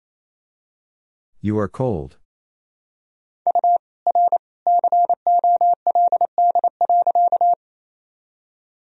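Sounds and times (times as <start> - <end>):
speech: 1.4 - 2.2
fast Morse code beeping in a single steady tone: 3.5 - 7.5.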